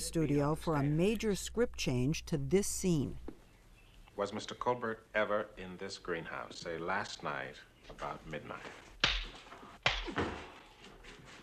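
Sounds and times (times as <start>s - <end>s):
speech: 0.1s - 3.3s, 4.2s - 8.8s, 10.0s - 10.4s
slaps across the face in a film scene in a greenhouse: 9.0s - 10.4s.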